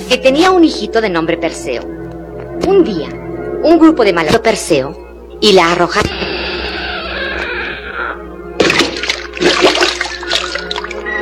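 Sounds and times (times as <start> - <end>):
speech: 0.1 - 2.0, 2.6 - 6.4
sea waves splashing and washing: 8.6 - 11.1.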